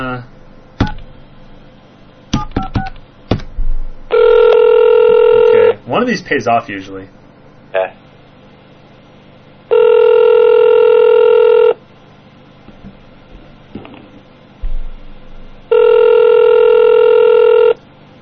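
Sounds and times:
outgoing phone call ringing tone on the line: 4.1 - 5.7, 9.7 - 11.8, 15.7 - 17.8
speech: 5.9 - 8.0.

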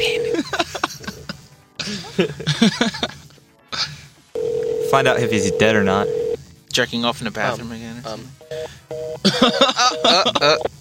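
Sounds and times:
cell phone call ring tones: 0.0 - 0.5, 4.4 - 6.4, 8.4 - 10.7
louder busier warbling phone ring: 0.0 - 0.5, 4.4 - 6.4, 9.8 - 10.7
laughter: 0.3 - 3.4, 9.2 - 10.7
speech: 2.2 - 2.8, 4.9 - 6.2, 6.8 - 10.7.

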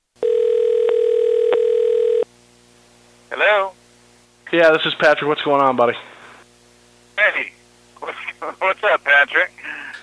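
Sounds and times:
loud steady electronic phone tone: 0.2 - 2.3
speech: 4.6 - 6.1, 8.6 - 9.6.

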